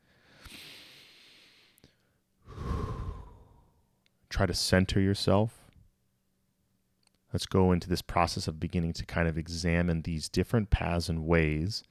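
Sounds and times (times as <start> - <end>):
deep breath taken during a guided meditation: 0.0 - 3.9
speech: 4.4 - 5.6, 7.3 - 11.9.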